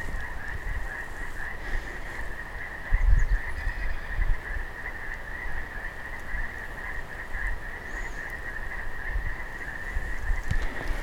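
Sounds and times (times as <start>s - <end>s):
chorus of mountain toads trilling: 0.0s - 11.0s.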